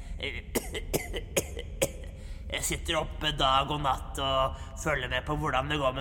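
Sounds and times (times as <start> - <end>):
short harsh coughs: 0.0 - 2.2
speech: 0.2 - 1.3, 2.6 - 5.9.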